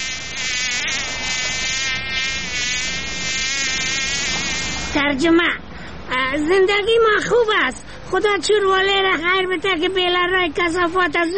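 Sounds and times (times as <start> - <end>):
fly buzzing: 0.0 - 5.0
speech: 5.0 - 5.7, 6.3 - 11.3.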